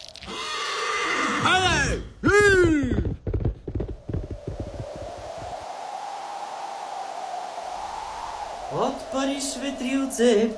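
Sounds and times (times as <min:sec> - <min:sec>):
horse whinnying loudly: 0:00.2 - 0:02.0
short uneven thumps: 0:02.2 - 0:05.5
speech: 0:09.5 - 0:10.5.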